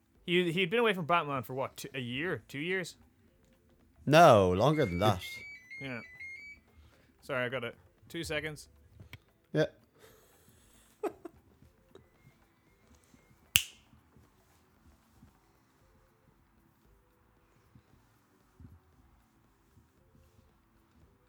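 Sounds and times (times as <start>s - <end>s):
speech: 0.3s - 3.0s, 4.0s - 6.1s, 7.2s - 8.8s, 9.5s - 9.8s
hand clap: 13.6s - 13.8s.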